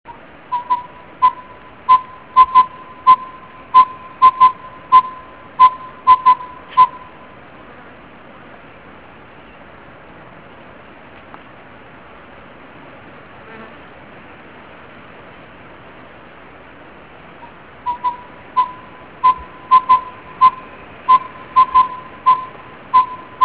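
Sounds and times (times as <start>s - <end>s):
collared owlet Glaucidium brodiei nocturnal call: 0.1s - 7.2s, 17.4s - 23.4s.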